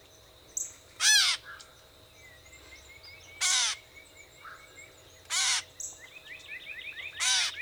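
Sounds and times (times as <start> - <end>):
Gray catbird giving harsh nasal mew calls: 3.4 - 3.8, 5.3 - 5.7, 7.2 - 7.6.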